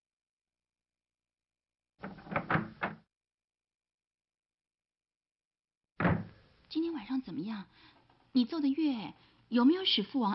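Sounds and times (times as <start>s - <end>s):
door opening with wooden clunks and rattles: 2.0s - 3.1s, 6.0s - 6.4s
speech: 6.7s - 10.3s.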